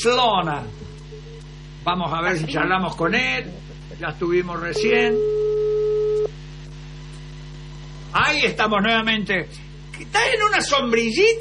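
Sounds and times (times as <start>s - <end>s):
speech: 0.0s - 0.9s, 1.8s - 5.4s, 8.1s - 11.3s
faint low hum: 0.0s - 11.3s
electronic video call calling tone: 4.7s - 6.3s.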